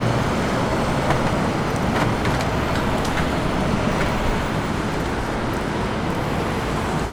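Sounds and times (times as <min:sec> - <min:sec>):
street ambience: 0:00.0 - 0:07.1.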